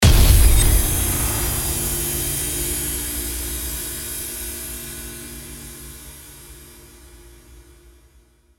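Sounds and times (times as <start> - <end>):
gong impact: 0.0 - 4.4.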